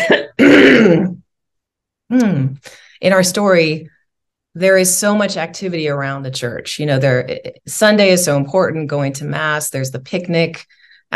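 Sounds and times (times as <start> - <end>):
speech: 0.0 - 1.1, 2.1 - 3.9, 4.5 - 11.1
throat-clearing cough: 0.0 - 1.2.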